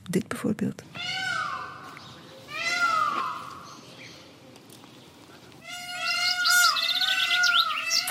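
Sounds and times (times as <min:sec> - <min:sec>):
speech: 0:00.1 - 0:01.2
peacock giving wailing meow-like cries: 0:00.9 - 0:04.5, 0:05.5 - 0:08.0.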